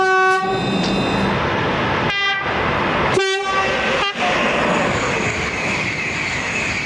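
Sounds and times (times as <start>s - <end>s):
electric locomotive typhon horn blasts: 0.0s - 0.6s, 2.1s - 2.5s, 3.1s - 4.3s
heavy rumble of moving train: 0.0s - 6.8s.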